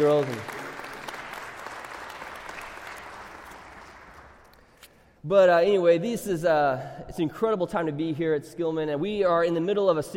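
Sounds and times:
speech: 0.0s - 0.6s, 5.2s - 10.1s
church audience applauding: 0.0s - 4.6s.

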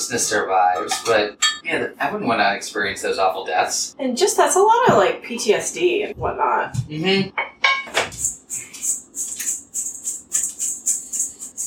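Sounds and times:
speech: 0.0s - 7.6s
breading nuggets in a bowl: 8.2s - 11.6s.

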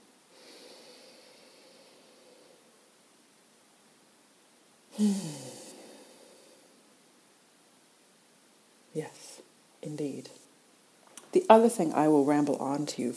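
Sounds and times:
person inhaling deeply: 0.3s - 2.7s, 4.9s - 6.8s
speech: 5.0s - 5.4s, 11.4s - 13.1s.

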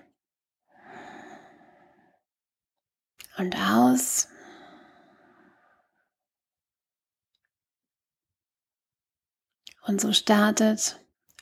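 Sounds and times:
deep breath in: 0.7s - 2.3s, 4.3s - 6.1s
speech: 3.4s - 4.3s, 9.9s - 11.0s.

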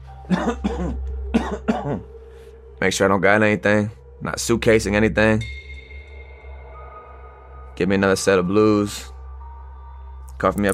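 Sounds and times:
low steady hum: 0.0s - 10.7s
harsh coughing: 0.3s - 2.1s
speech: 1.8s - 2.2s, 2.8s - 5.6s, 7.8s - 9.1s, 10.4s - 10.7s.

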